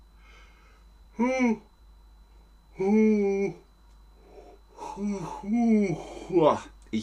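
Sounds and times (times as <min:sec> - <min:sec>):
person yawning aloud: 0:01.1 - 0:01.7, 0:02.8 - 0:03.6, 0:04.2 - 0:06.4
speech: 0:01.2 - 0:01.7, 0:02.8 - 0:03.6, 0:05.0 - 0:07.0.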